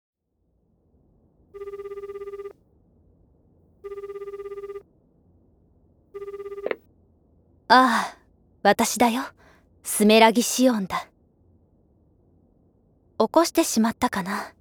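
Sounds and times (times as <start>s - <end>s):
telephone ringing late at night: 1.6s - 2.6s, 3.8s - 4.8s, 6.2s - 6.8s
speech: 7.7s - 11.1s, 13.2s - 14.5s.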